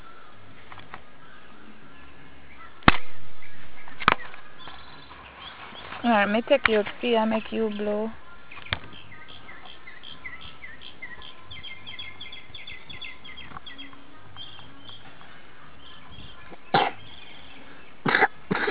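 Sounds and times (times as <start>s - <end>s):
faint birds chirping: 0.0s - 18.6s
speech: 6.0s - 8.2s
person coughing: 18.1s - 18.6s.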